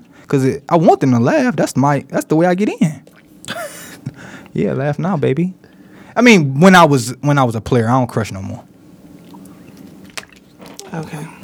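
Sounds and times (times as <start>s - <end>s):
speech: 0.3s - 3.1s, 4.6s - 5.6s, 6.2s - 8.7s, 10.9s - 11.4s
gulping swallows: 3.0s - 4.6s, 8.8s - 11.4s
person drinking water: 3.0s - 4.6s, 8.8s - 11.4s
laughter: 3.4s - 4.2s.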